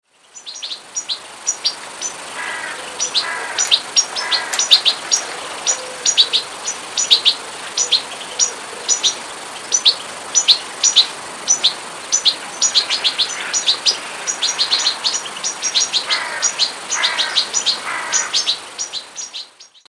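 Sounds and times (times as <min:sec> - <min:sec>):
goldfinch: 0:00.5 - 0:19.8.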